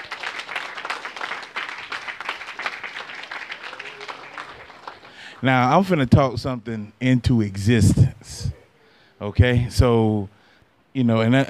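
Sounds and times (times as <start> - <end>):
church audience applauding: 0.0 - 5.8
speech: 5.4 - 8.5, 9.2 - 11.4.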